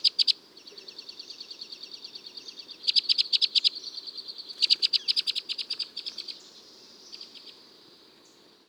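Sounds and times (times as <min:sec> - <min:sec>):
bird flight calls: 0:00.2 - 0:06.5.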